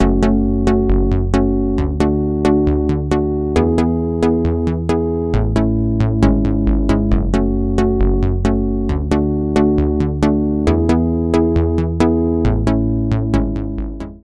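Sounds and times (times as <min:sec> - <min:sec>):
Micromoog 2090 synthesizer bass: 0:00.0 - 0:14.2.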